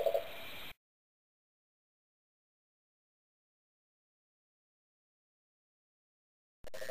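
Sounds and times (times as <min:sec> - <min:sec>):
faint steady hiss: 0:00.2 - 0:00.8
cane toad low purring trilling call: 0:06.7 - 0:06.8.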